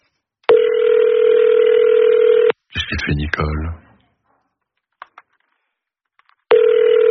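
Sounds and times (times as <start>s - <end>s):
telephone ringing tone of an unanswered call: 0.5s - 2.5s, 6.5s - 7.0s
speech: 3.1s - 3.8s.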